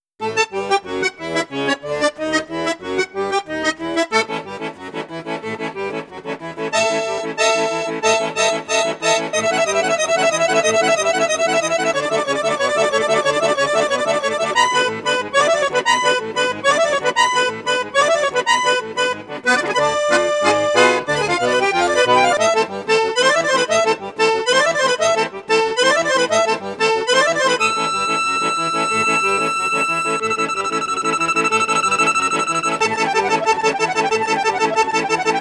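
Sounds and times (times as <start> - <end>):
Cavagnolo Virtuose 4 accordion on bassoon and flute registers: 0.2 - 35.4.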